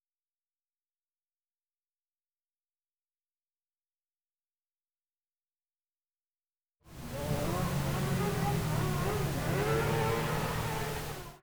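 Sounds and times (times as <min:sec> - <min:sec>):
engine revving high: 0:06.9 - 0:11.4.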